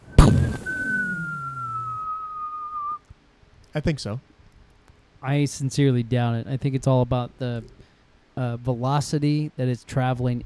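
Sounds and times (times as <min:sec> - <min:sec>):
person whistling a falling-bomb sound: 0:00.0 - 0:03.0
speech: 0:03.7 - 0:04.3, 0:05.2 - 0:07.8, 0:08.4 - 0:10.4.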